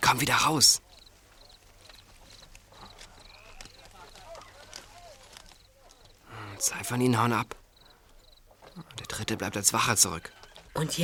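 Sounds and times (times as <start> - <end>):
speech: 0.1 - 0.9, 6.6 - 7.6, 8.8 - 11.0
horse hooves clip-clopping: 0.8 - 6.2, 7.5 - 11.0.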